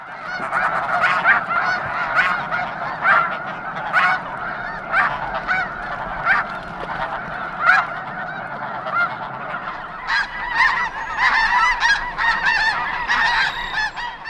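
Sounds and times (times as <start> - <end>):
large winter flock of snow geese calling on the waters of Chesapeake Bay: 0.0 - 14.2.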